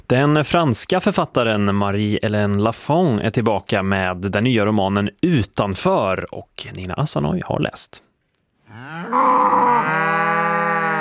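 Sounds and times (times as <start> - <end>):
speech: 0.1 - 8.1
cow mooing: 8.7 - 10.9.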